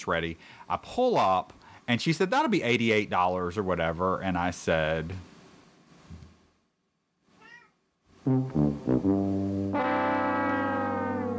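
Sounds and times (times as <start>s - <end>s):
speech: 0.0s - 5.3s, 8.2s - 10.0s
hungry cat meowing: 7.4s - 7.8s, 10.4s - 11.3s.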